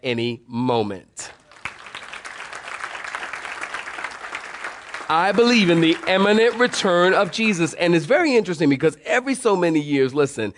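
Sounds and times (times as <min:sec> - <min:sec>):
speech: 0:00.0 - 0:01.3, 0:05.1 - 0:10.5
audience applause: 0:01.5 - 0:07.6.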